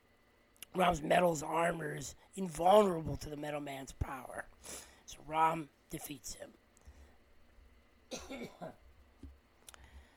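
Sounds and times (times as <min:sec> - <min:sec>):
speech: 0:00.7 - 0:06.6, 0:08.1 - 0:08.8
throaty cough: 0:08.1 - 0:08.8.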